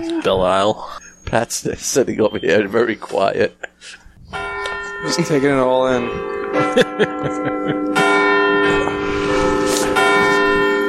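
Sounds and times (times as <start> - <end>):
speech: 0.0 - 4.4, 5.0 - 8.0
laughter: 0.1 - 10.6
church bells ringing: 4.3 - 10.8.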